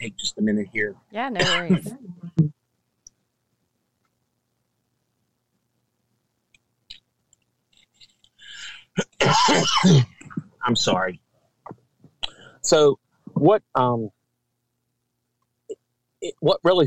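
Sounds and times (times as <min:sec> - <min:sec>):
speech: 0:00.0 - 0:02.5, 0:09.2 - 0:11.2, 0:12.6 - 0:14.2, 0:16.2 - 0:16.8
person clearing their throat: 0:01.4 - 0:01.9, 0:08.5 - 0:11.1
person coughing: 0:01.4 - 0:01.9, 0:09.0 - 0:11.0.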